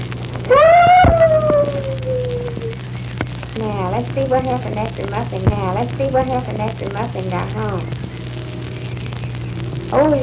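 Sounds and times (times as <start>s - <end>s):
person imitating a dog with a long howling cry: 0.5s - 2.8s
speech: 4.2s - 8.0s, 9.9s - 10.2s.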